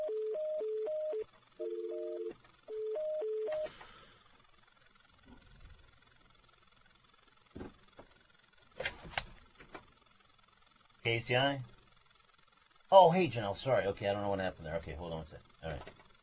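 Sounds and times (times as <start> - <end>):
telephone dial tone: 0.0 - 3.7
speech: 11.1 - 11.7, 12.9 - 16.0.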